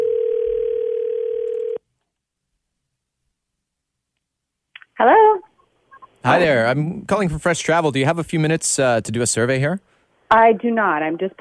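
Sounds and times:
phone line ringback tone on an outgoing call: 0.0s - 1.8s
speech: 6.2s - 11.3s.

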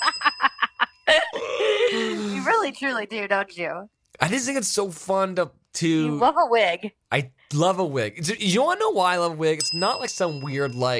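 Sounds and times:
bell dinging: 0.0s - 1.3s, 9.5s - 10.9s
speech: 2.6s - 10.9s.

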